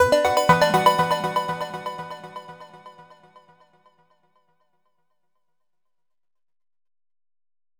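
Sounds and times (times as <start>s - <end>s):
synths: 0.0s - 2.9s.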